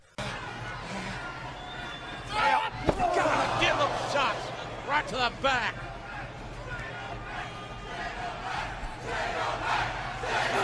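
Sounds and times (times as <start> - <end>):
large arena crowd roaring and chanting: 0.2 - 10.6
speech: 5.0 - 5.8.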